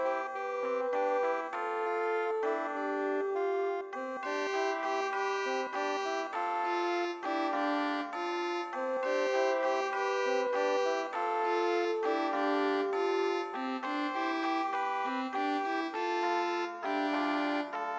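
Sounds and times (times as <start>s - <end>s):
MIDI music: 0.1s - 17.9s.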